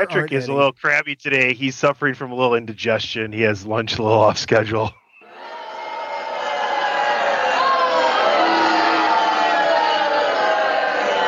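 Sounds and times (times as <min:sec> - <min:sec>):
speech: 0:00.0 - 0:05.0
large crowd booing: 0:05.2 - 0:11.2
scattered shouts from the crowd: 0:05.2 - 0:11.2.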